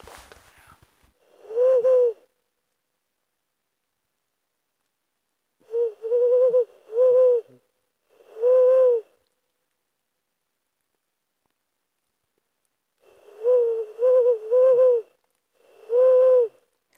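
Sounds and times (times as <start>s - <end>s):
Ural owl hooting: 1.2s - 2.3s, 5.6s - 9.2s, 13.0s - 16.6s.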